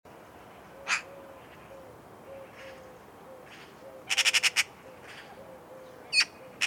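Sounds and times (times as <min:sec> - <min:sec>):
Pica pica Eurasian magpie rattling calls and squawks: 0:04.1 - 0:04.7, 0:06.2 - 0:06.6.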